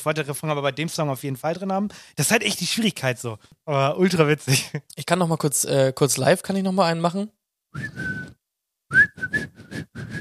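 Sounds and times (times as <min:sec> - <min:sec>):
speech: 0:00.0 - 0:09.5
person whistling a song melody: 0:07.8 - 0:10.1.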